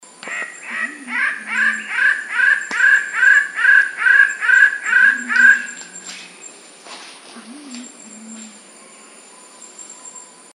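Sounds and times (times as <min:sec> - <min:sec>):
King bird-of-paradise harsh nasal calls in Papua New Guinea: 0:00.3 - 0:06.0.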